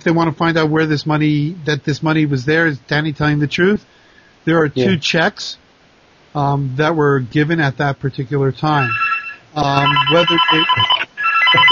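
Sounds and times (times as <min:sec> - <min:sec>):
speech: 0:00.0 - 0:05.6, 0:06.3 - 0:11.6
mobile phone electronic melodic ringtone: 0:08.8 - 0:11.6.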